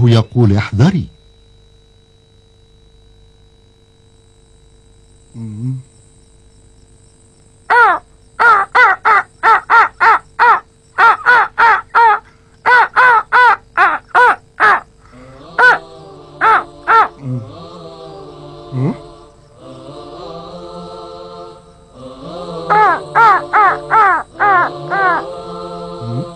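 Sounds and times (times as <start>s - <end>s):
speech: 0.0s - 1.2s, 5.4s - 5.9s
faint insect chirring: 0.0s - 26.3s
flock of crows cawing: 7.7s - 14.9s, 15.6s - 15.8s, 16.4s - 17.2s, 22.7s - 25.3s.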